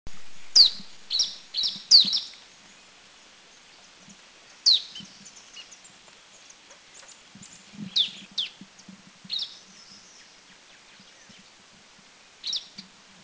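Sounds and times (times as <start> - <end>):
Hill Prinia at Doi Ang Khan in Thailand: 0.1 - 2.4, 4.5 - 11.6, 12.4 - 13.0.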